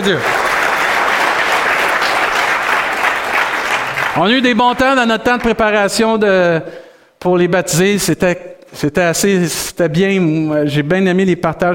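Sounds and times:
speech: 0.0s - 0.4s, 4.2s - 11.7s
church audience applauding: 0.0s - 5.0s.

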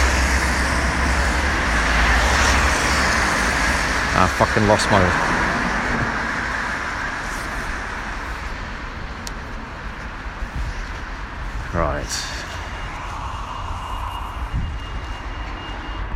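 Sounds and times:
road traffic at a pedestrian crossing: 0.0s - 16.1s
speech: 4.2s - 5.3s.

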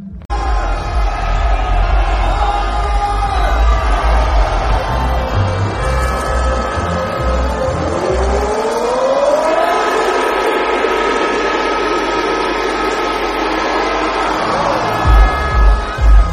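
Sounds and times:
large outdoor crowd of ski jumping spectators cheering and yelling in Oberstdorf Germany: 0.3s - 16.3s.

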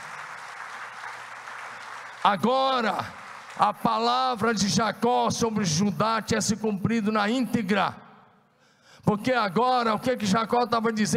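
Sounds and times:
crowd of many hands clapping: 0.0s - 4.2s
speech: 2.2s - 8.0s, 9.0s - 11.1s.

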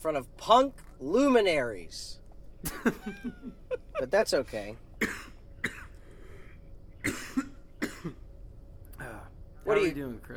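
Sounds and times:
speech: 0.0s - 5.3s, 9.7s - 10.3s
laughter: 2.6s - 4.3s
person coughing: 5.0s - 6.0s, 7.0s - 8.2s.

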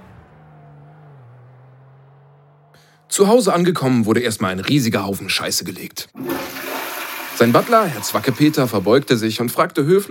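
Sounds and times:
tuned car engine roaring through tuner exhaust as car speeds off: 0.0s - 4.7s
speech: 3.2s - 6.5s, 7.4s - 10.1s.

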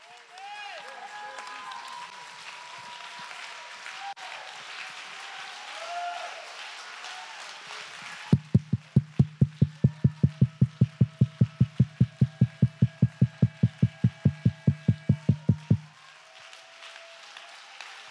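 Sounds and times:
audience applause in a large room: 0.0s - 18.0s
rhythmic hand claps: 8.0s - 18.0s.

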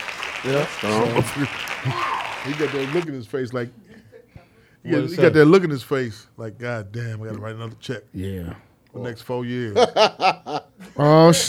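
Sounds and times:
hands clapping: 0.0s - 3.1s
speech: 0.4s - 4.1s, 4.8s - 11.4s
laughter: 9.7s - 11.0s.

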